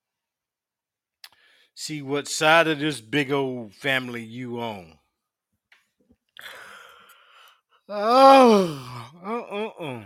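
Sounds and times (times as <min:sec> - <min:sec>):
speech: 0:01.8 - 0:05.0, 0:07.9 - 0:10.0
long yawn with voiced moan: 0:07.9 - 0:10.0.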